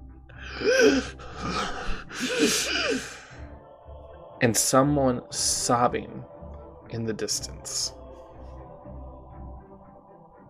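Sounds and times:
voice imitating ragged gasping breaths: 0:00.3 - 0:03.5
speech: 0:00.6 - 0:03.4, 0:04.4 - 0:06.3, 0:06.9 - 0:08.0.

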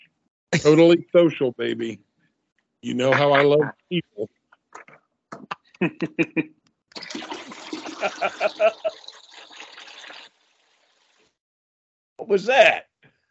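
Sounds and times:
speech: 0:00.5 - 0:02.1, 0:02.8 - 0:04.4, 0:05.8 - 0:07.3, 0:08.0 - 0:09.0, 0:12.2 - 0:12.9
laughter: 0:00.6 - 0:01.9, 0:02.9 - 0:03.7, 0:05.8 - 0:06.5, 0:07.7 - 0:09.0
short choppy vocal sounds: 0:02.9 - 0:06.5
toilet flushing with a rushing gurgling gush of water: 0:06.9 - 0:11.2.

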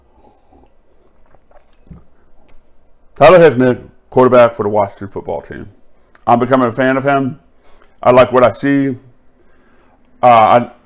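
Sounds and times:
person sipping whiskey and swallowing: 0:00.0 - 0:02.9
speech: 0:03.2 - 0:07.4, 0:08.0 - 0:09.1, 0:10.2 - 0:10.8.

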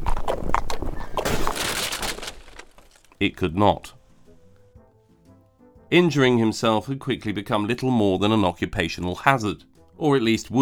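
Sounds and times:
horse-drawn carriage hooves clip-clopping: 0:00.0 - 0:01.3
speech: 0:03.2 - 0:04.0, 0:05.9 - 0:10.6.

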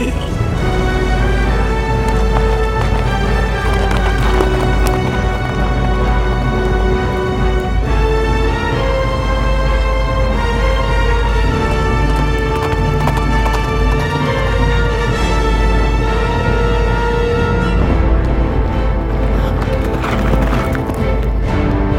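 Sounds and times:
horses galloping in pursuit: 0:00.0 - 0:21.9
loud sustained orchestral music: 0:00.0 - 0:21.9.

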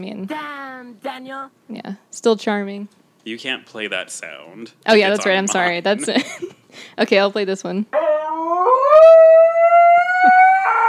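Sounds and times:
speech: 0:00.0 - 0:09.1
husky howling: 0:08.0 - 0:10.8.

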